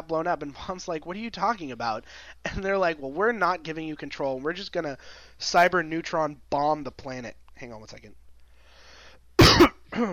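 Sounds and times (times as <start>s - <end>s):
speech: 0.1s - 8.2s, 9.6s - 10.1s
person coughing: 9.4s - 10.1s
throat clearing: 9.4s - 10.1s.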